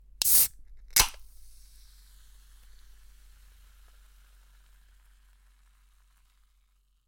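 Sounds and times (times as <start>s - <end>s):
tonic water can opening: 0.2s - 1.5s.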